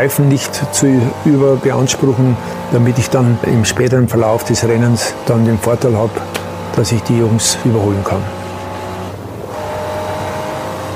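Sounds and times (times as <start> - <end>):
speech: 0.0 - 8.4
race car engine droning at high speed toward Schwedenkreuz: 0.0 - 10.9.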